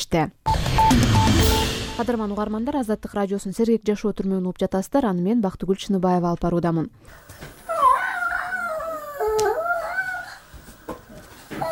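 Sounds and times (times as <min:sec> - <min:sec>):
speech: 0:00.0 - 0:01.1, 0:02.0 - 0:07.6
young child of four to five crying inside a round cage of water pipes: 0:07.6 - 0:10.5, 0:11.4 - 0:11.7.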